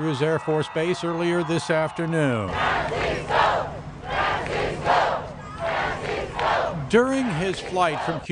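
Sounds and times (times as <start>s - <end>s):
speech: 0.0s - 3.7s, 6.9s - 8.2s
large crowd cheering and shouting outdoors at an airport arrival: 0.0s - 8.2s.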